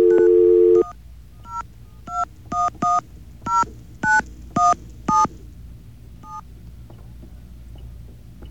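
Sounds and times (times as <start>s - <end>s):
long telephone tone: 0.0s - 1.0s
telephone keypad dialing beeps: 0.0s - 5.3s
faint hum: 0.0s - 8.5s.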